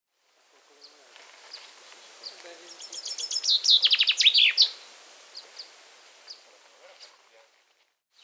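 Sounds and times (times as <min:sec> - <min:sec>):
common chaffinch Fringilla coelebs song: 0:00.2 - 0:07.3
faint common chaffinch chirps: 0:00.7 - 0:07.2.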